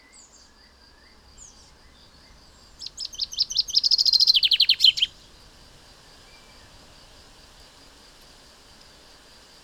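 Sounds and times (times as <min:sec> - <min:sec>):
common chaffinch Fringilla coelebs song: 0:02.8 - 0:05.1.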